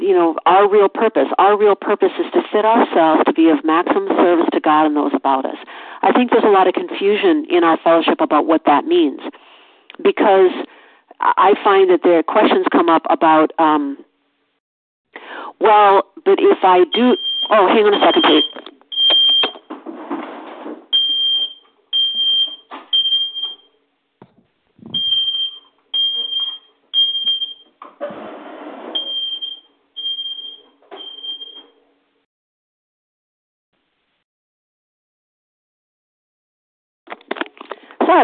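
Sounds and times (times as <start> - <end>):
speech: 0.1 - 14.1, 15.1 - 18.7
smoke detector alarm beeping: 16.9 - 19.6, 20.9 - 23.7, 24.9 - 27.7, 29.0 - 31.7
rustling and clattering: 19.6 - 20.9.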